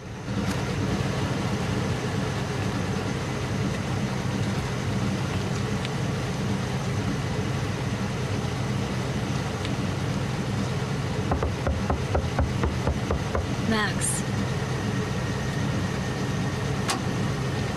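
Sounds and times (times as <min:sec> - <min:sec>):
truck engine idling by a house porch: 0:00.0 - 0:17.7
knocking on truck window glass: 0:11.3 - 0:13.5.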